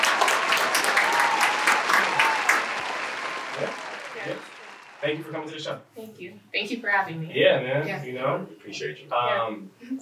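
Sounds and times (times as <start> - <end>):
crowd applauding: 0.0 - 5.6
speech: 5.1 - 9.9.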